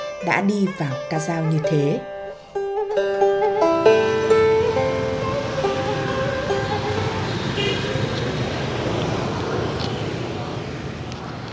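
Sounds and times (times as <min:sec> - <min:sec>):
busy street traffic engine and road noise: 0:00.0 - 0:11.5
speech: 0:00.2 - 0:02.1
loud sustained horn blasts: 0:03.6 - 0:09.4.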